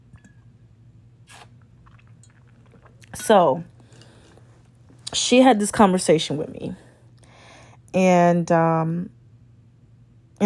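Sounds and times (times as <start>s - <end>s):
low steady hum: 0.0s - 10.4s
person sipping a drink: 1.2s - 4.7s
speech: 3.1s - 3.7s, 5.3s - 6.8s, 7.9s - 9.2s.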